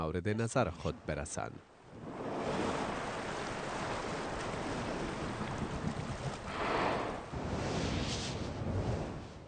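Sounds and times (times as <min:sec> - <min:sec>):
speech: 0:00.0 - 0:02.1
surf rolling onto a sandy beach on the coast of Brazil: 0:01.8 - 0:09.4.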